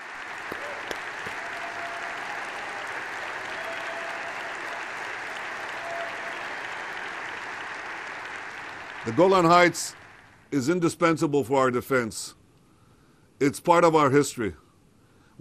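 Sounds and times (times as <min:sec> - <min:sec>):
large crowd applauding: 0:00.0 - 0:10.4
speech: 0:09.0 - 0:12.4, 0:13.4 - 0:14.6.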